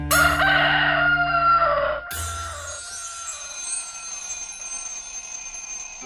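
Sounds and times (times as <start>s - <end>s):
rooster crowing: 0.1s - 3.4s.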